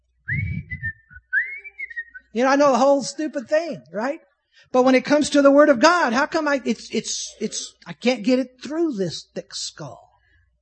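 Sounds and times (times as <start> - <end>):
person whistling a bright bouncy TV theme tune: 0.3 - 2.3
speech: 2.3 - 10.1.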